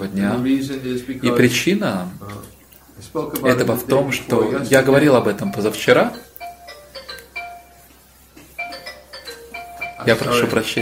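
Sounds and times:
speech: 0:00.2 - 0:06.3, 0:10.1 - 0:10.7
phone ringing with an electronic melody for an incoming call: 0:04.5 - 0:10.7.

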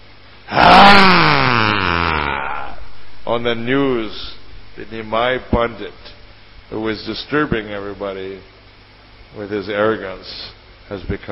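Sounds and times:
man's voice imitating a powerful roar: 0:00.5 - 0:03.6
speech: 0:03.4 - 0:06.0, 0:06.7 - 0:08.5, 0:09.3 - 0:11.2.

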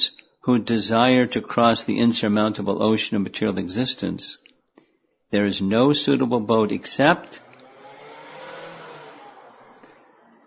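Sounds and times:
speech: 0:00.4 - 0:04.4, 0:05.3 - 0:07.5
motorcycle riding past outside on a street in Chicago: 0:06.7 - 0:10.4.

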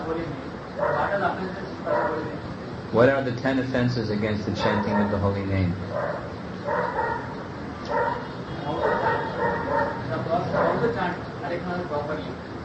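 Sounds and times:
hissy background: 0:00.0 - 0:12.6
dog barking: 0:00.8 - 0:01.2, 0:01.8 - 0:02.4, 0:04.6 - 0:05.2, 0:05.9 - 0:11.0
speech: 0:01.2 - 0:07.2, 0:10.1 - 0:12.5.

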